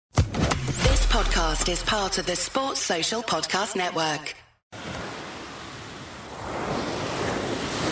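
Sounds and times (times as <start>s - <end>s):
speech: 1.2s - 5.0s
sea surf washing onto a shore: 4.8s - 7.8s.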